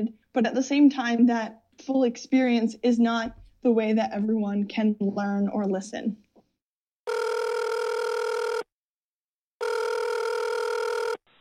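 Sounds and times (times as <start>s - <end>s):
speech: 0.0s - 6.2s
telephone ringing for an incoming relay call: 7.1s - 8.7s, 9.6s - 11.2s.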